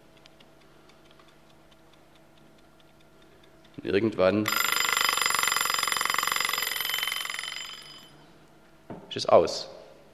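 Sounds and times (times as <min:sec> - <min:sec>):
wind-up egg timer ticking: 0:00.0 - 0:08.0
speech: 0:03.8 - 0:04.7, 0:09.2 - 0:09.8.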